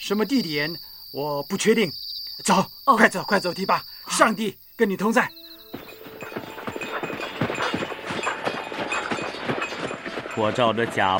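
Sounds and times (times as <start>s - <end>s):
speech: 0.0s - 5.4s, 10.4s - 11.1s
donkey hooves clip-clopping on a hard surface: 4.9s - 11.1s.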